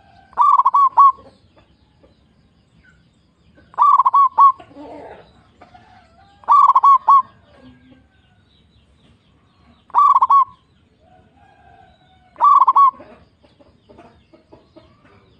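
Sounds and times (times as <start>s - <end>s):
zebra dove cooing: 0.0s - 1.4s, 3.7s - 7.9s, 9.9s - 10.6s, 12.4s - 13.3s.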